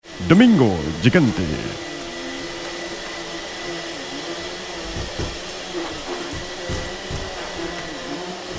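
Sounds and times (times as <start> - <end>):
vacuum cleaner running across the floor: 0.0 - 8.5
speech: 0.2 - 1.9
faint bumps of vacuum cleaner moving across the floor: 4.5 - 8.5.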